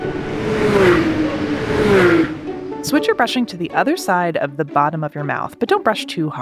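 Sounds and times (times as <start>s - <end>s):
NASCAR race cars speeding by on a track: 0.0s - 4.3s
speech: 2.9s - 6.4s.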